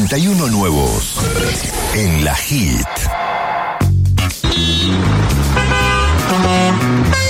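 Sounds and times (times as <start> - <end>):
speech: 0.1 - 3.3, 4.3 - 7.2
street traffic: 2.6 - 7.2
car horns honking: 4.3 - 7.2.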